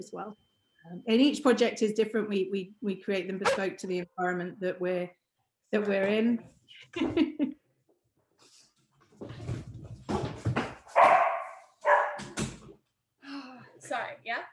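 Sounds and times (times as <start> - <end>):
speech: 0.0 - 7.6
dog barking: 10.9 - 12.4.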